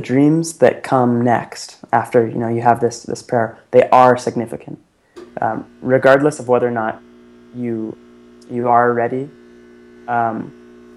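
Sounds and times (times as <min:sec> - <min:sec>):
speech: 0:00.0 - 0:09.4, 0:10.1 - 0:10.6
refrigerator humming: 0:05.1 - 0:10.9.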